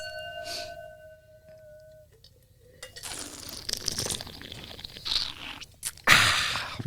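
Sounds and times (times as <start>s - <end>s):
glass ringing: 0.0s - 2.1s
slurping wine while tasting: 2.8s - 6.8s.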